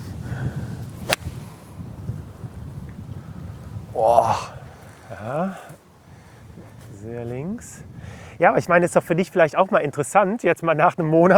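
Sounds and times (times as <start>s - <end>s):
eight iron striking a golf ball on an uphill shot: 1.0s - 1.6s
speech: 4.0s - 4.5s, 5.2s - 5.8s, 7.0s - 11.3s.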